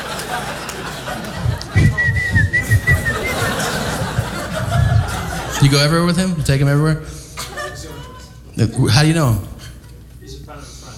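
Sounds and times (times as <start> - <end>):
chuckling: 0.0 - 6.2
low chatter: 0.0 - 10.9
person whistling a thin steady high note: 1.8 - 3.7
speech: 5.6 - 7.2, 8.6 - 9.5.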